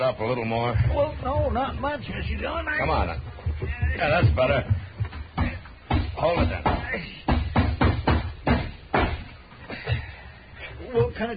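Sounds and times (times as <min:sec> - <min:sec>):
speech: 0:00.1 - 0:04.8, 0:06.2 - 0:07.2, 0:10.9 - 0:11.3
hammer driving a nail into an old wooden door of rotten dry wood: 0:03.5 - 0:09.3.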